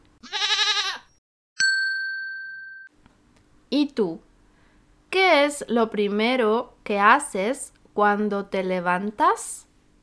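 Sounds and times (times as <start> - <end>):
single wavering sheep bleat: 0.2 - 1.1
clear sustained bell-like ding: 1.6 - 2.9
speech: 3.7 - 4.3, 5.1 - 9.7.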